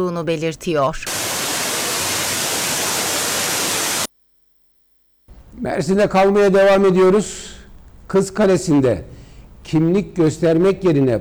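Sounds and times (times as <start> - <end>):
speech: 0.0 - 1.4, 5.6 - 7.5, 8.1 - 11.2
rushing water of an ice-cold waterfall in Mersin: 1.1 - 4.1.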